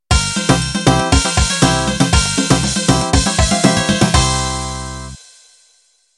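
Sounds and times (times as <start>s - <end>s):
cifteteli music: 0.4s - 5.2s.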